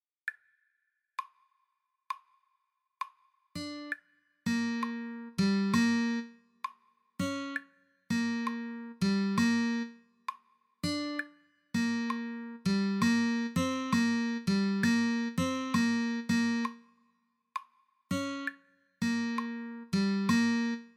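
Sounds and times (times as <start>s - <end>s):
slow guitar piece: 4.5s - 6.3s, 7.2s - 10.0s, 10.8s - 16.8s, 18.1s - 20.9s.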